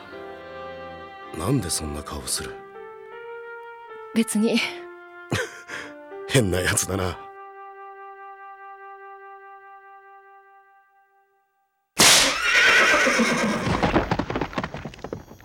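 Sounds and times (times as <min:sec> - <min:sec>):
speech: 0:01.3 - 0:02.6, 0:04.2 - 0:05.5, 0:06.3 - 0:07.2
horse whinnying: 0:12.0 - 0:14.6
horse hoofbeats: 0:12.0 - 0:15.4.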